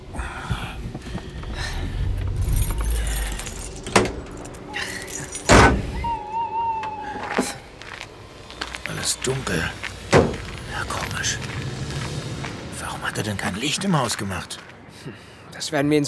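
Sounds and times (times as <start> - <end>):
keys jingling: 0.0 - 6.0
car engine rumbling as the car pulls up and parks: 0.0 - 15.3
speech: 9.2 - 9.8, 11.2 - 11.6, 13.0 - 16.0.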